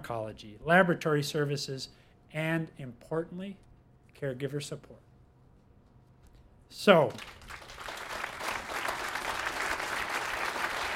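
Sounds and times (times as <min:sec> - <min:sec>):
speech: 0:00.1 - 0:05.0, 0:06.7 - 0:07.6
audience applauding at a veterans' health care facility event: 0:07.1 - 0:10.9.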